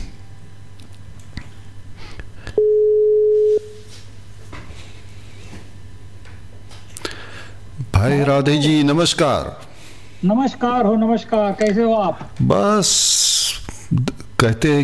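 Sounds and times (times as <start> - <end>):
telephone line tone while calling a guest: 2.6 - 3.8
speech: 8.0 - 14.8.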